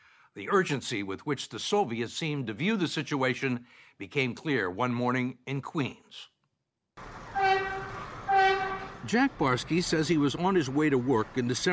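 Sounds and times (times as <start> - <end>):
speech: 0.4 - 6.3, 9.1 - 11.7
A train subway rumbling at a station platform in Queens, New York: 7.0 - 11.7.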